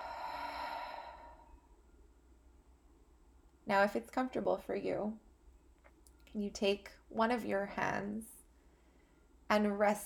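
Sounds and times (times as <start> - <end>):
long soft exhale during guided breathing: 0.0 - 1.7
speech: 3.7 - 5.2, 6.3 - 8.4, 9.5 - 10.0.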